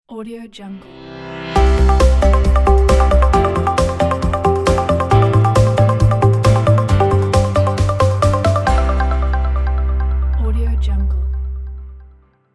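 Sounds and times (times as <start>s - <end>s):
bright corporate logo jingle: 1.4s - 10.4s.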